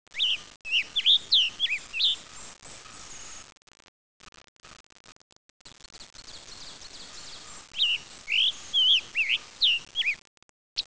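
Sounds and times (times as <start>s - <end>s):
scarlet tanager singing: 0.1s - 2.5s, 6.3s - 10.2s.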